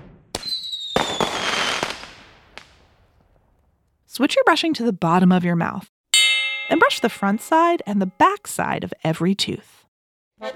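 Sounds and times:
fireworks exploding for July 4th Independence Day celebration in the U.S.: 0.0 - 3.4
firework whistling streak: 0.4 - 2.2
speech: 4.2 - 5.9, 6.7 - 9.8, 10.4 - 10.5.

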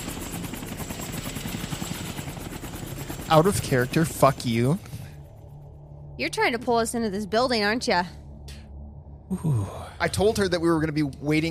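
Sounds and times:
helicopter rotor thumping over engine roar: 0.0 - 5.5
speech: 3.3 - 4.9, 6.2 - 8.2, 9.3 - 11.4.

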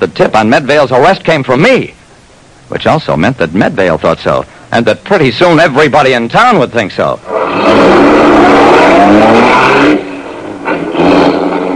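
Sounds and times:
speech: 0.0 - 2.0, 2.7 - 10.1
car engine roaring as the car drives away: 7.2 - 11.7.

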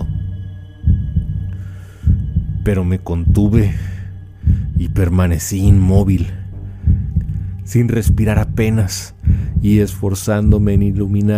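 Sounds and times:
old man's heartbeat thumps: 0.0 - 11.1
low hum: 0.0 - 11.3
speech: 2.6 - 4.0, 4.8 - 6.4, 7.7 - 11.3.

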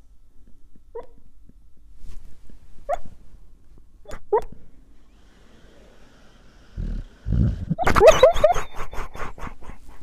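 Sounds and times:
sleeping dog barking and whimpering: 6.7 - 9.8.

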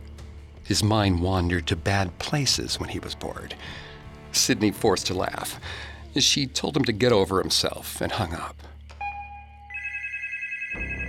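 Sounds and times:
speech: 0.7 - 8.7
telephone ringing with a steady electronic ring: 9.0 - 11.0.

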